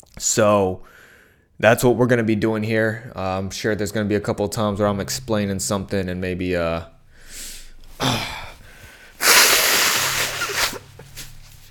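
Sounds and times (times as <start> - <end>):
speech: 0.2 - 1.0, 1.6 - 7.0, 8.0 - 8.4
person blowing their nose: 9.1 - 11.4.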